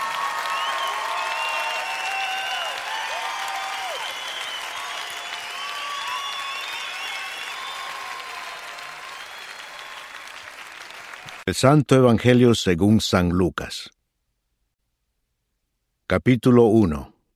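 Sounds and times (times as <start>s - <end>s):
audience applauding: 0.0s - 11.5s
crowd cheering: 0.0s - 11.5s
speech: 11.5s - 14.0s, 16.1s - 17.1s.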